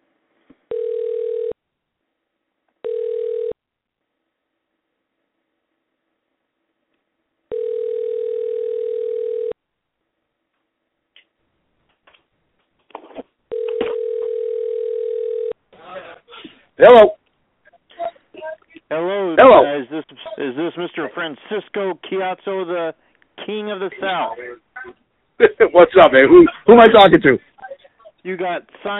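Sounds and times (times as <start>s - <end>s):
outgoing telephone call ringing tone on the line: 0.7s - 1.6s, 2.8s - 3.6s, 7.5s - 9.6s, 13.5s - 15.6s
speech: 16.8s - 17.2s, 20.7s - 24.6s, 25.4s - 27.5s, 28.2s - 28.9s.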